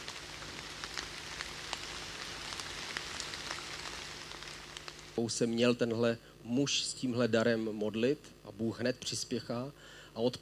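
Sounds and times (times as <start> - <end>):
steady rain: 0.0 - 5.2
speech: 5.2 - 10.3.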